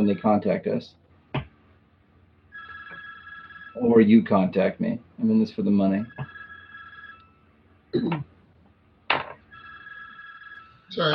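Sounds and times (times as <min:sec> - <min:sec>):
speech: 0:00.0 - 0:01.0, 0:03.8 - 0:06.3, 0:07.9 - 0:08.3, 0:10.9 - 0:11.1
telephone ringing with electronic trill: 0:02.5 - 0:04.2, 0:05.9 - 0:07.6, 0:09.2 - 0:11.1.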